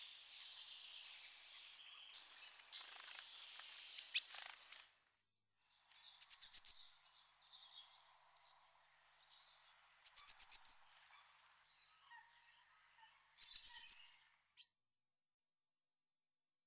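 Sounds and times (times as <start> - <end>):
Eurasian blue tit song of thin high notes and rapid trilled notes: 0.0 - 5.0, 5.7 - 10.8, 13.4 - 14.8.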